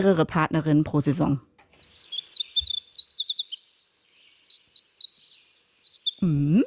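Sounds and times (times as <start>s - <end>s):
speech: 0.0s - 1.5s, 6.2s - 6.6s
winter wren song: 1.8s - 6.6s
low voice-like sound: 6.2s - 6.6s.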